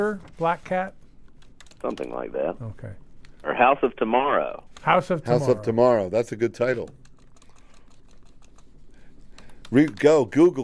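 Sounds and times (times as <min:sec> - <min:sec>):
speech: 0:00.0 - 0:01.0, 0:01.8 - 0:07.0, 0:09.7 - 0:10.6
typing on a computer keyboard: 0:01.3 - 0:02.1, 0:06.8 - 0:10.2.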